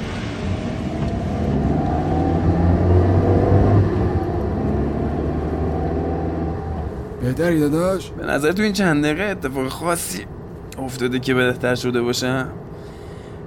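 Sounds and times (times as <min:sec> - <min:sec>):
car engine revving while the vehicle drives along: 0:00.0 - 0:07.7
speech: 0:07.3 - 0:12.6.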